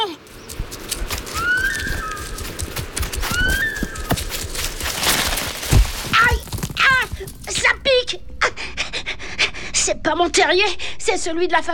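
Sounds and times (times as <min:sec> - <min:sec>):
noisy outdoor background: 0:00.0 - 0:11.7
rising wavering whistled alarm calls: 0:01.0 - 0:04.8
speech: 0:10.1 - 0:11.7.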